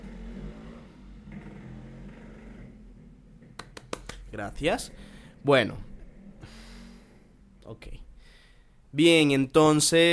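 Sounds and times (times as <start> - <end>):
motorcycle engine rumbling outside: 0.0 - 3.6, 4.2 - 8.2
speech: 4.3 - 6.6, 7.7 - 8.1, 8.9 - 10.1.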